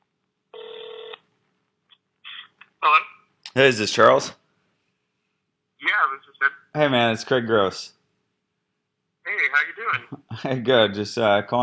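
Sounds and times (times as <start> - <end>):
faint hiss: 0.2 - 11.6
telephone call dialed with long steady electronic tone: 0.6 - 1.2
speech: 2.8 - 4.4, 6.8 - 8.0, 9.9 - 11.6.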